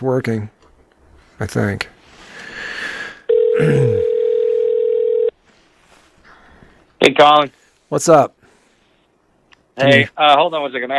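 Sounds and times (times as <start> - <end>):
speech: 0.0 - 0.6, 1.4 - 2.0, 3.6 - 4.1, 7.0 - 8.4, 9.8 - 10.9
telephone line ringback tone while placing a call: 3.3 - 5.3.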